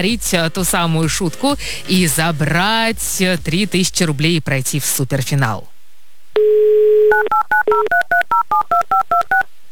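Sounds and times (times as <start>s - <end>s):
speech: 0.0s - 5.7s, 7.1s - 9.5s
telephone dial tone: 6.4s - 9.4s.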